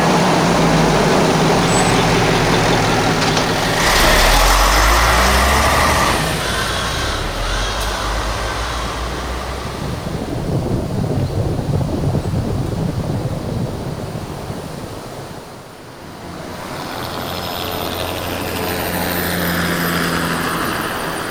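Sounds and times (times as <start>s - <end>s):
heavy bus engine rumbling and idling: 0.0s - 15.0s, 16.0s - 21.2s
bus air brakes hissing: 0.1s - 10.0s.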